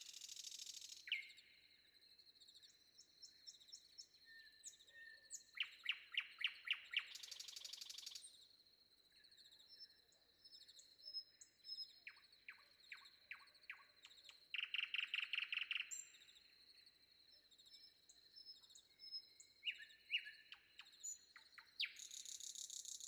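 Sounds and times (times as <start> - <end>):
common nightingale singing varied phrases before dawn: 0.0 - 1.4, 2.6 - 8.2, 11.0 - 16.5, 17.5 - 23.0.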